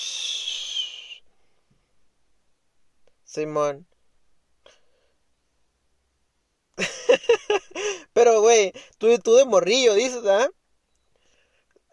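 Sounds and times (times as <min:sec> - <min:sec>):
shrill steam whistle from something passing by: 0:00.0 - 0:01.2
speech: 0:03.4 - 0:04.0, 0:08.2 - 0:10.6
laughter: 0:06.8 - 0:07.8.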